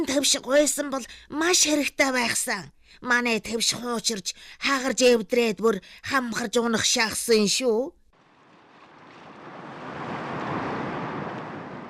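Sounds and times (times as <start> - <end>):
speech: 0.0 - 8.0
sea waves surging and washing: 8.2 - 11.8
wind-like noise: 8.2 - 11.8.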